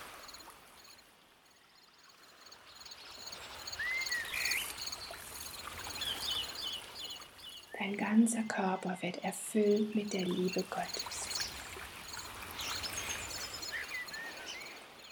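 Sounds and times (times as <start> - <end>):
insects chirring: 0.0 - 7.8, 9.6 - 15.1
water flowing: 0.0 - 15.1
bird calls: 2.1 - 7.8, 9.6 - 15.1
speech: 7.8 - 11.2.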